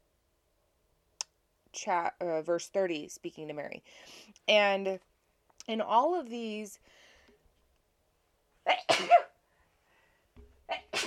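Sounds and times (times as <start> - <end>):
speech: 1.8 - 7.0
person sneezing: 8.7 - 9.4, 10.7 - 11.0.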